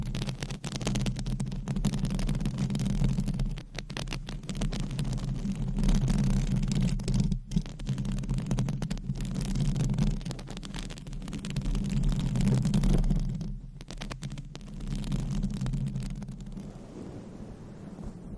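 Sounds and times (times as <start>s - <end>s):
nails scratching across a microphone cover: 0.0s - 18.3s
low rumbling hum: 16.0s - 18.3s.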